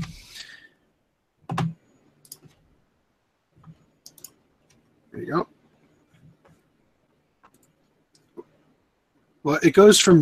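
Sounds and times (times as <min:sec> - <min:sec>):
computer keyboard clicks: 0:01.5 - 0:02.6, 0:03.6 - 0:04.8, 0:07.4 - 0:08.3
computer mouse clicks while clicking between browser tabs: 0:04.0 - 0:04.4
speech: 0:05.2 - 0:05.5, 0:09.5 - 0:10.2.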